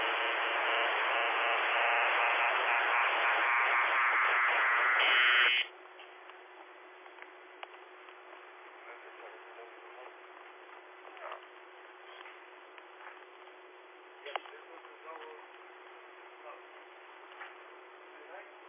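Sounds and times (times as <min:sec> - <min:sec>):
radio repeater tone beep: 0:00.0 - 0:05.7
steady hiss of narrowband radio static: 0:00.0 - 0:05.8, 0:07.1 - 0:18.6.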